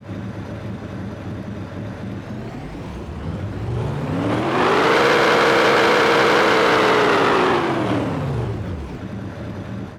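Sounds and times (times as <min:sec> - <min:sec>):
pickup truck engine: 0:00.0 - 0:09.9.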